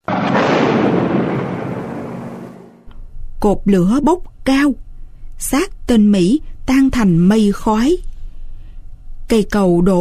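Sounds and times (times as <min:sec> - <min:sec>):
landmine exploding violently: 0:00.0 - 0:02.9
speech: 0:03.4 - 0:08.1, 0:09.3 - 0:09.9.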